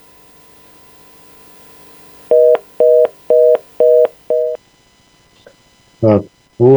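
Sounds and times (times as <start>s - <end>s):
telephone line two-pitch beeps after a dropped call: 2.3s - 4.6s.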